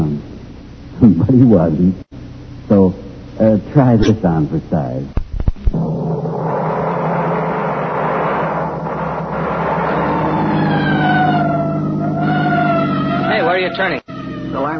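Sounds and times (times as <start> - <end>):
engine and road rumble: 0.0 - 14.7
speech: 1.0 - 2.1, 3.5 - 5.2, 13.7 - 14.0
emergency vehicle siren wailing: 7.3 - 14.7.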